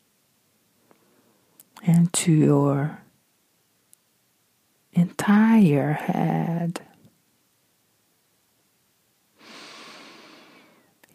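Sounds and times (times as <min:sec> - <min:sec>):
speech: 0:01.8 - 0:03.0, 0:05.0 - 0:06.9
person breathing in during a guided meditation: 0:09.4 - 0:11.0.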